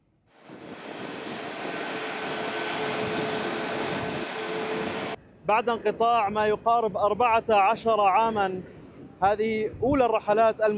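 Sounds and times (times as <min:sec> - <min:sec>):
jet airliner engines spooling up on takeoff: 0:00.3 - 0:05.2
speech: 0:05.5 - 0:10.7.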